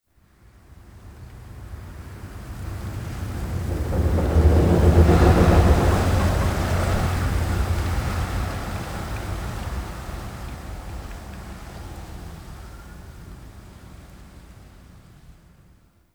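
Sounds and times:
large wind gust through a root cave skylight: 0:01.9 - 0:09.8.

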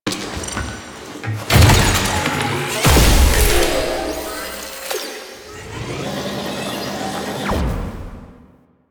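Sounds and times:
scanner deploying: 0:01.5 - 0:08.1.

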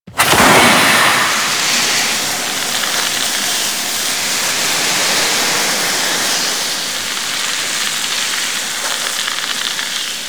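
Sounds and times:
gas venting: 0:00.0 - 0:10.2.

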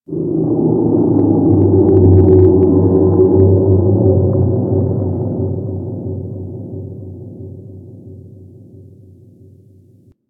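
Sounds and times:
large ocean underwater creatures ambience: 0:00.1 - 0:06.8.

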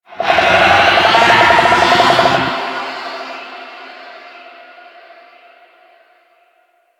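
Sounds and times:
infested golem vocal charge: 0:00.2 - 0:03.5.

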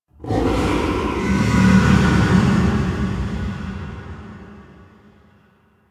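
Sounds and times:
interior growling ambience: 0:00.1 - 0:05.6.

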